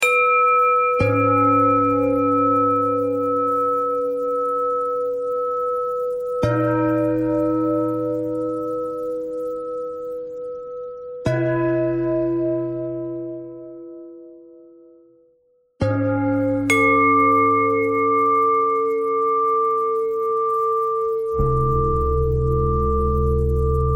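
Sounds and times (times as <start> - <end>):
bells: 0.0 - 23.9.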